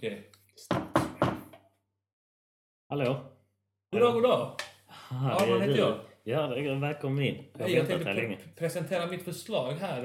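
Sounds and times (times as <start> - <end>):
speech: 0.0 - 0.8, 2.9 - 3.3, 3.9 - 10.0
firm knocking on a door: 0.6 - 1.6.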